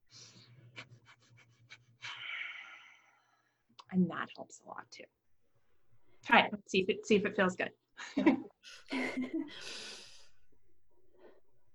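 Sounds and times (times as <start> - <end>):
breath of fire rapid breathing of Kundalini yoga: 0.1 - 3.1, 8.7 - 11.7
speech: 3.9 - 5.2, 6.3 - 9.9
laughter: 8.0 - 11.6.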